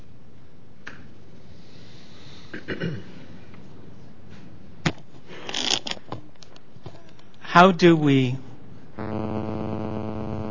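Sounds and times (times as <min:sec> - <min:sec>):
speech: 0:02.5 - 0:03.2, 0:07.6 - 0:08.5
electrical buzz from microphone: 0:09.0 - 0:10.4.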